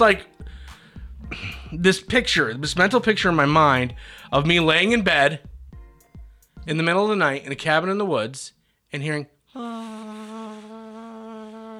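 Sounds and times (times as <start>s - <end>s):
speech: 0.0s - 0.3s, 1.3s - 5.5s, 6.6s - 10.2s
human voice imitating mosquito buzzing: 9.6s - 11.7s.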